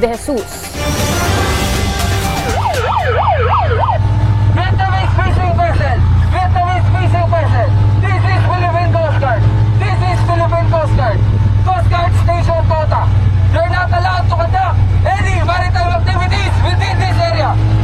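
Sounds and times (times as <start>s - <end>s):
patrol rubber boat engine drone: 0.7s - 17.8s
Philippine Coast Guard patrol rubber boat siren in the West Philippine Sea: 0.8s - 7.0s.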